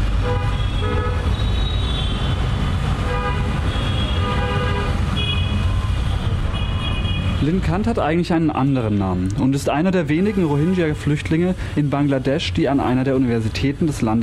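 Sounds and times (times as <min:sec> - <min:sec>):
city traffic engine rumble in Bangladesh: 0:00.0 - 0:14.2
car horns honking in city traffic in Bangladesh: 0:00.2 - 0:07.4
speech: 0:07.4 - 0:14.2.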